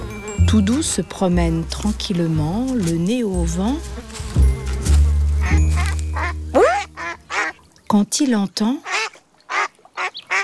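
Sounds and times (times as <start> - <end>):
speech: 0.5 - 4.1, 7.9 - 8.9
ducks quacking at a pond: 5.4 - 7.6, 8.9 - 10.4.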